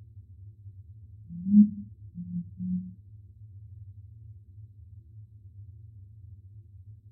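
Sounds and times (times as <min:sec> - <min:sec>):
low rumbling background: 0:00.3 - 0:03.3
curassow giving deep low booming hums: 0:01.3 - 0:03.0.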